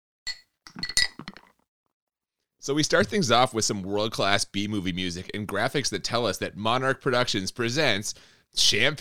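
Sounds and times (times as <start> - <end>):
item dropped into a drink in a glass clinking: 0.3 - 1.5
speech: 2.6 - 8.9.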